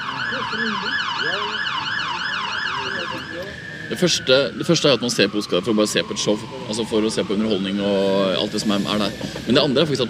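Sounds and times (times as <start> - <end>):
ambulance siren wailing with rising-and-falling yelp: 0.0 - 10.0
faint traffic rumble: 0.0 - 10.0
speech: 0.3 - 1.9, 2.8 - 10.0.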